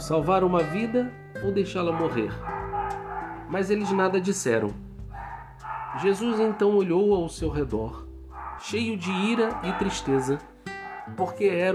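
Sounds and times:
speech: 0.1 - 2.6, 3.5 - 4.9, 6.0 - 8.0, 8.6 - 10.5, 11.1 - 11.7
dog barking and yelping: 1.8 - 6.8, 8.3 - 11.2.

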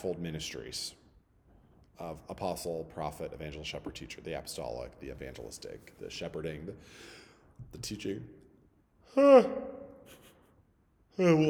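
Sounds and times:
speech: 0.0 - 1.0, 2.0 - 8.4, 9.1 - 9.8, 11.2 - 11.4
person yawning: 9.1 - 10.0.

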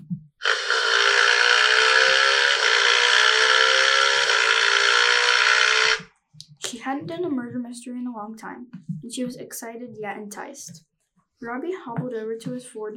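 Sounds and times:
motorcycle engine revving and speeding off: 0.4 - 6.1
speech: 7.0 - 12.9.

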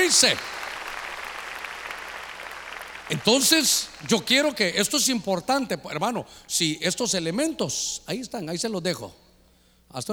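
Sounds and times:
church audience clapping loudly: 0.0 - 4.6
speech: 0.1 - 0.6, 3.1 - 9.2, 9.9 - 10.1.

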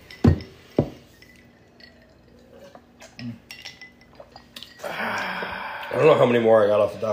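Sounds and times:
glasses clinking in a toast: 0.0 - 6.5
speech: 3.2 - 3.5, 6.0 - 7.1.

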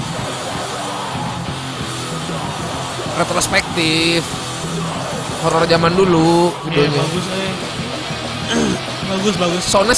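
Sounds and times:
dense muddy wall of distorted guitars in lo-fi death metal: 0.0 - 9.9
speech: 3.2 - 4.5, 5.4 - 7.7, 8.5 - 9.9
harsh growled death metal vocals shouting: 8.5 - 8.8.

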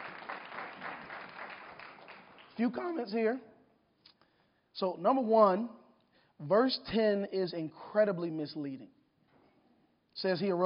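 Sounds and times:
group of people applauding a reader after a Bible reading: 0.0 - 3.0
speech: 2.6 - 3.5, 4.8 - 5.8, 6.4 - 9.0, 10.2 - 10.6.

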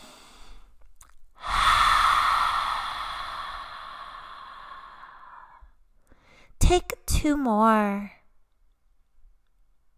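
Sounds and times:
deep breath exhaled through the open mouth during pranayama meditation: 1.4 - 6.3
speech: 6.7 - 8.2.

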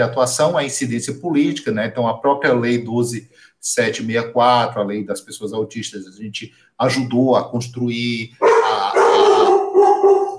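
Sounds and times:
speech: 0.0 - 8.5
dog barking with howl-like cries: 8.4 - 10.3.

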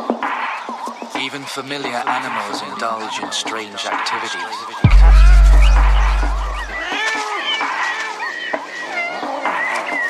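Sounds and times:
speech: 1.2 - 6.0
low rumble: 4.9 - 6.8
several cats meowing and yowling: 6.9 - 10.0.

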